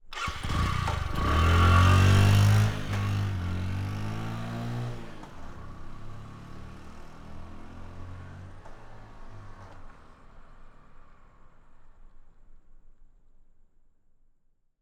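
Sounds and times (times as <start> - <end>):
Indian motorcycle electric start: 0.0 - 6.7
Indian motorcycle pulling away at fast speed: 0.1 - 9.9.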